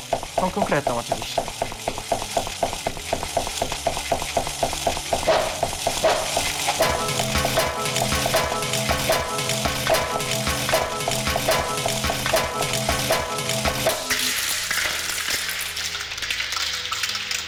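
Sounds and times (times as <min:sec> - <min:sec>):
sizzling noise: 0:00.0 - 0:17.4
speech: 0:00.4 - 0:01.7
video game weapon clanking against map edge: 0:05.2 - 0:14.5
video game music: 0:05.3 - 0:15.6.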